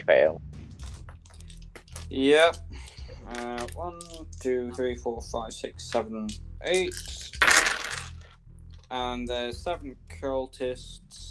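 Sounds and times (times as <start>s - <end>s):
speech: 0.1s - 0.5s, 2.1s - 2.7s, 3.3s - 7.4s, 8.9s - 11.2s
large dice clattering: 6.9s - 8.2s.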